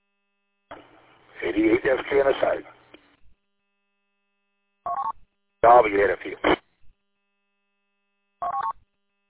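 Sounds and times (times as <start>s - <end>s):
speech: 0.7s - 2.8s, 5.6s - 6.6s
telephone keypad dialing tones as a phone call is made: 8.4s - 8.7s.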